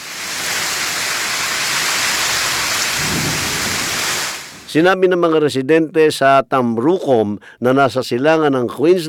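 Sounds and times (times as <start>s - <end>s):
heavy rain pouring down in Queensland Australia: 0.0s - 4.7s
low rumble of thunder: 0.6s - 4.8s
speech: 4.7s - 9.0s.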